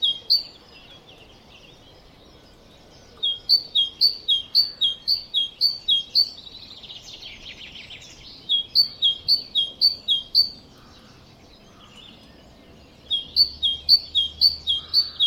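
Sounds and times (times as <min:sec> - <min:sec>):
great tit Parus major song: 0:00.0 - 0:15.2.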